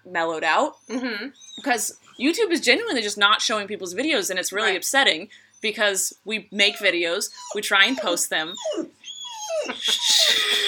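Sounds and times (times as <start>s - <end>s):
speech: 0.1s - 9.0s, 9.6s - 10.6s
dog whining: 0.7s - 2.2s, 6.6s - 10.6s.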